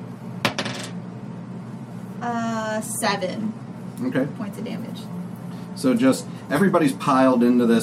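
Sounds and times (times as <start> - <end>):
low hum: 0.0 - 7.8
dice tumbling onto a hard table: 0.5 - 0.9
speech: 2.2 - 7.8.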